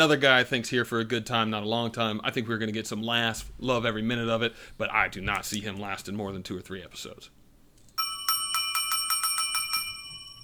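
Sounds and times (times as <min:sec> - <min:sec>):
speech: 0:00.0 - 0:07.4
app notification bell chime: 0:08.0 - 0:10.4.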